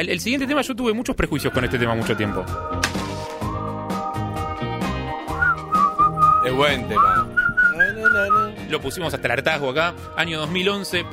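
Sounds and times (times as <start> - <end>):
speech: 0.0 - 3.0, 6.5 - 7.3, 8.1 - 11.1
whistled melody in a pop song: 1.3 - 9.2
full pop band with drums and bass: 3.5 - 8.9.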